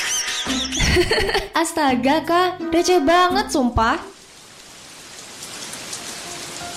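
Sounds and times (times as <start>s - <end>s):
laughter: 0.0s - 1.5s
speech: 0.4s - 4.1s
steady rain falling: 3.7s - 6.7s.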